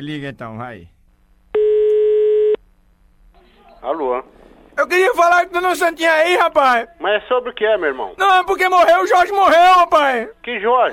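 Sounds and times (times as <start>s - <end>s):
speech: 0.0s - 1.0s, 3.8s - 10.9s
buzzy telephone line tone: 1.5s - 2.6s.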